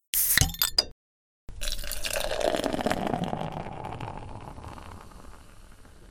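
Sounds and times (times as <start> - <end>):
beer being poured into a glass: 1.5 - 6.0.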